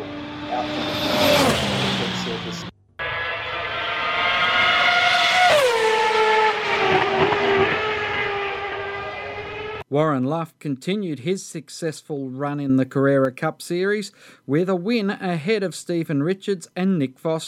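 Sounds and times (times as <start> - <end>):
2014 spec and 2013 spec Formula One car engines passing: 0.0 - 9.8
speech: 0.5 - 1.0, 10.0 - 17.4.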